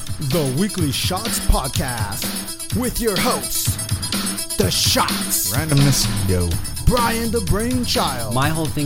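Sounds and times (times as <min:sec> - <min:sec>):
speech: 0:00.2 - 0:03.8, 0:04.5 - 0:08.8
gunshot sound effects: 0:05.7 - 0:06.5.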